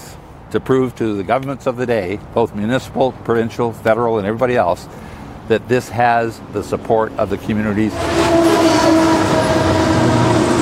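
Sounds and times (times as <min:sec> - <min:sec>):
speech: 0:00.5 - 0:08.6
loaded coal freight train rumbling past: 0:06.4 - 0:10.5
freight train horn blaring in a long sustained blast: 0:07.8 - 0:10.5.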